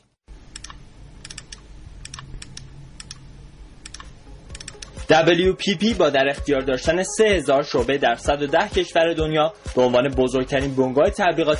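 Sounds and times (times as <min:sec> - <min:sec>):
computer mouse clicks on web pages: 0:00.0 - 0:03.2, 0:03.8 - 0:05.1
faint low hum: 0:00.0 - 0:05.1
speech: 0:05.1 - 0:11.5.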